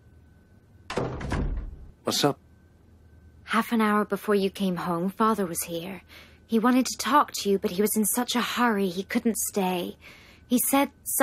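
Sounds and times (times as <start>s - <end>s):
door pulled shut: 0.9s - 2.0s
speech: 2.1s - 2.4s, 3.5s - 11.2s.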